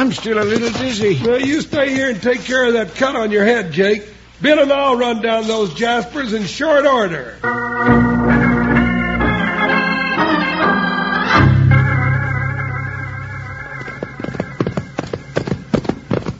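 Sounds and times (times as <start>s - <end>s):
galloping horses with hooves clip-clopping: 0.0s - 2.7s, 13.0s - 16.3s
speech: 0.0s - 8.1s
loud dramatic music: 7.5s - 13.8s.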